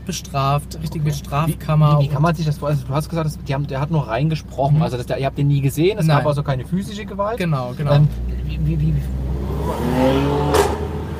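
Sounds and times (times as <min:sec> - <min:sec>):
car engine revving and accelerating over deep low rumble: 0:00.0 - 0:11.1
speech: 0:00.1 - 0:10.8.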